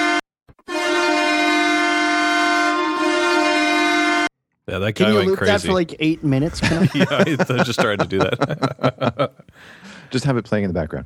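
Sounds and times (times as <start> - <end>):
train horn blaring in a multi-tone chord: 0.0 - 4.3
speech: 4.7 - 11.0
laughter: 4.8 - 10.2.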